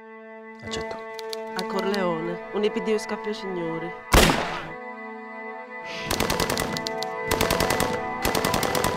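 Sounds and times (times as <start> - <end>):
sustained music bed in a crime film trailer: 0.5 - 8.9
speech: 0.6 - 4.5
rapid machine-gun fire in a crime film trailer: 4.1 - 4.7, 6.0 - 8.9.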